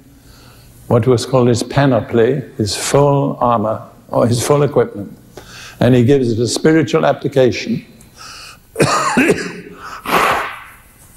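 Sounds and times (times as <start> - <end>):
speech: 0.9 - 5.2, 5.8 - 7.9
person blowing nose: 9.7 - 10.8.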